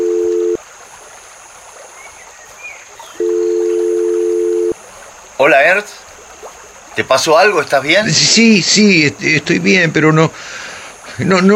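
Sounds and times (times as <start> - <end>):
mobile phone call ringing tone: 0.0 - 0.6, 3.2 - 4.8
faint hiss: 0.0 - 11.5
speech: 5.4 - 6.1, 7.0 - 10.5, 11.2 - 11.5.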